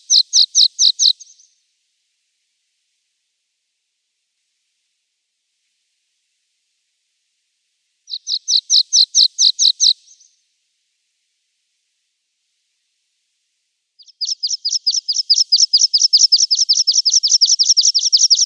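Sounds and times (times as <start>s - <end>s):
native bird singing high rapid trills: 0.0s - 1.4s, 8.1s - 10.2s, 14.0s - 18.4s.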